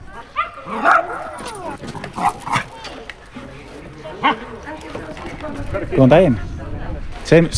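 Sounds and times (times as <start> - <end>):
young dog nearly a year old yipping and barking: 0.0 - 5.9
laughter: 0.0 - 7.5
speech: 4.2 - 4.5, 5.9 - 6.5, 7.3 - 7.5.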